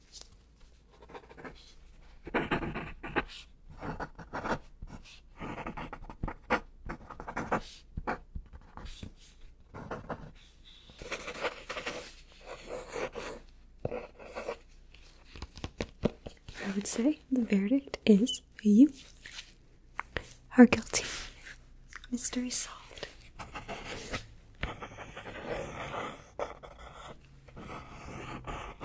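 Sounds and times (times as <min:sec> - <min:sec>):
pen scratching across paper as a verdict is written: 0:00.9 - 0:14.7, 0:23.3 - 0:28.8
speech: 0:16.7 - 0:19.1, 0:20.6 - 0:21.1, 0:22.1 - 0:22.8.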